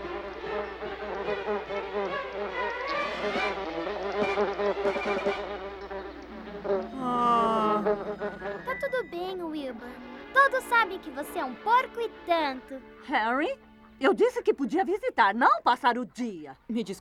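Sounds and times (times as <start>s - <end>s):
bee buzzing in a dubbed film scene: 0.0s - 13.0s
speech: 1.3s - 1.8s, 10.8s - 16.9s.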